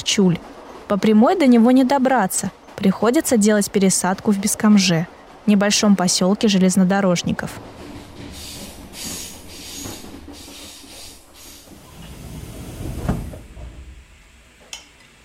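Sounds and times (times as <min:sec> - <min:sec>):
electric commuter train rolling along the rails: 0:00.0 - 0:15.2
speech: 0:00.1 - 0:07.9
heavy thump: 0:12.8 - 0:14.1.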